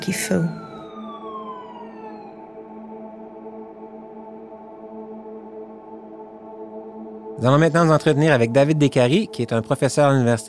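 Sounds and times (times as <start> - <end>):
speech: 0.0 - 0.7, 7.4 - 10.4
ambulance siren wailing at night: 0.0 - 6.5.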